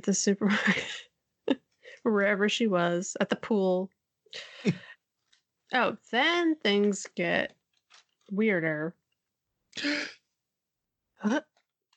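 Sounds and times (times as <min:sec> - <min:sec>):
speech: 0:00.0 - 0:04.9, 0:05.7 - 0:07.6, 0:08.3 - 0:09.0, 0:09.8 - 0:10.2, 0:11.2 - 0:11.5
person gasping: 0:09.8 - 0:10.3.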